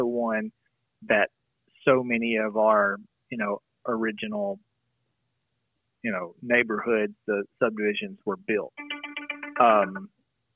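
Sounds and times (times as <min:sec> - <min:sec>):
speech: 0:00.0 - 0:04.7, 0:06.0 - 0:08.9, 0:09.6 - 0:10.1
cell phone ringtone electronic jingle: 0:08.8 - 0:10.1.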